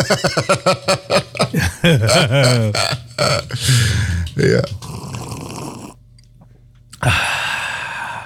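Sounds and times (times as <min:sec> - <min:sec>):
speech: 0:00.0 - 0:00.9, 0:01.8 - 0:04.8
person chuckling: 0:00.0 - 0:04.9
person slurping hot coffee: 0:03.6 - 0:06.0.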